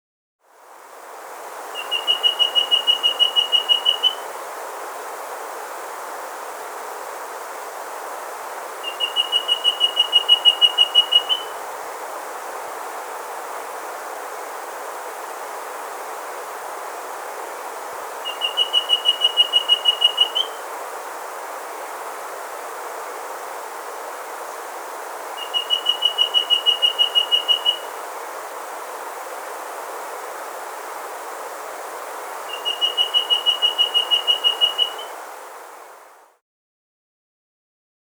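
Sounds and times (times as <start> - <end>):
Rusty-breasted antpitta Grallaricula ferrugineipectus calling in the Andes: 1.8 - 4.3, 8.8 - 11.6, 18.2 - 20.6, 25.4 - 28.0, 32.4 - 35.3.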